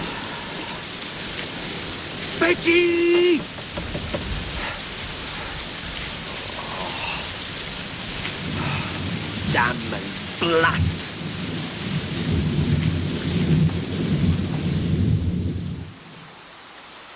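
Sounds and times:
heavy rain pouring: 0:00.0 - 0:17.1
man shouting: 0:02.4 - 0:03.5, 0:09.5 - 0:11.1
speech: 0:02.5 - 0:04.2, 0:09.6 - 0:11.0.

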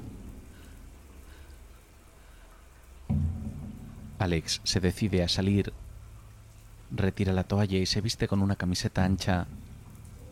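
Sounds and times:
running shower water: 0:00.0 - 0:10.2
low thud: 0:03.1 - 0:05.9
speech: 0:04.2 - 0:05.8, 0:06.9 - 0:09.7.

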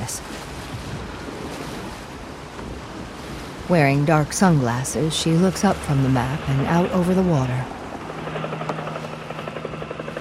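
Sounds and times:
speech: 0:03.7 - 0:07.8
helicopter rotor thumping over the Hudson River: 0:05.0 - 0:10.2.

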